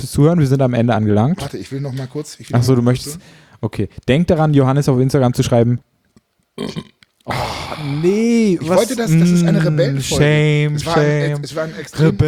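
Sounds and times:
speech: 0.0 - 5.9, 6.6 - 12.2
long loud burp with rising and falling pitch: 6.6 - 8.1.

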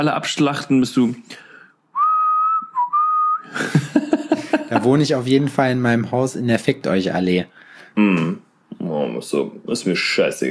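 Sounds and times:
speech: 0.0 - 1.5, 3.5 - 10.4
person whistling while walking along a promenade: 1.9 - 3.6
laughter: 3.5 - 5.1.

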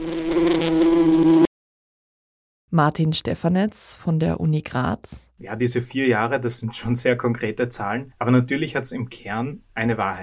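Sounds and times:
bees buzzing: 0.0 - 1.5
speech: 2.8 - 10.2.

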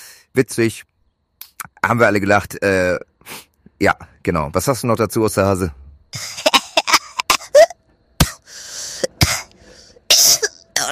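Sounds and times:
speech: 0.4 - 0.9, 1.9 - 5.8
harsh coughing: 6.2 - 10.6
short breaths: 8.4 - 10.1.

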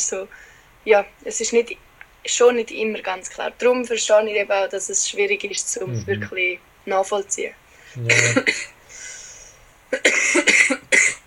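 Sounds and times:
speech: 0.1 - 8.8, 9.9 - 11.2
person coughing harshly: 5.9 - 6.3, 8.0 - 8.7, 10.0 - 11.2.

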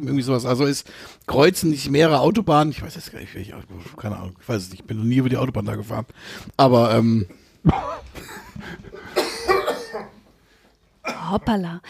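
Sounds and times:
speech: 0.0 - 8.8, 11.2 - 11.8
person coughing after swallowing a vanilla pod: 7.6 - 8.2, 9.0 - 10.2, 11.0 - 11.6.

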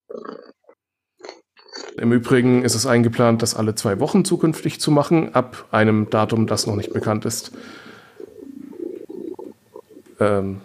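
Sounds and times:
speech: 2.0 - 7.9, 10.2 - 10.6
cat purring loudly: 6.0 - 7.5, 8.2 - 10.0.

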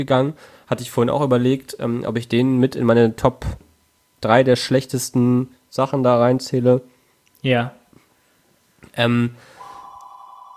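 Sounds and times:
speech: 0.0 - 7.8, 8.9 - 9.5
telephone ringing with steady electronic tone: 9.6 - 10.5.

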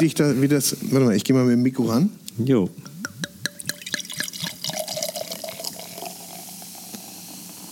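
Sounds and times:
speech: 0.0 - 2.9
beer glugging from a bottle into a glass: 2.9 - 7.6
fizzing crackling hiss of beer foam: 3.7 - 7.6.

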